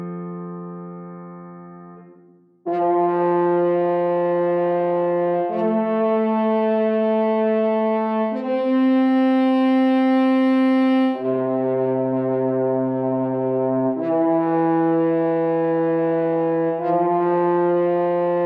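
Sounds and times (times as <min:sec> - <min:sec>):
forest horn in F major: 0:01.9 - 0:18.4.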